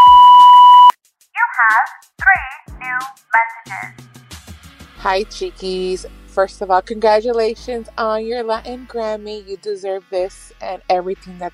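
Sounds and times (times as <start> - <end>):
loud steady voicemail electronic beep tone: 0.0 - 0.9
speech: 5.0 - 11.5.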